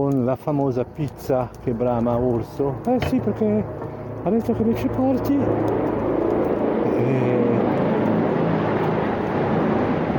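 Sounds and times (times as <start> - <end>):
speech: 0.0 - 6.0, 7.0 - 7.7
loud engine roar: 2.3 - 10.1.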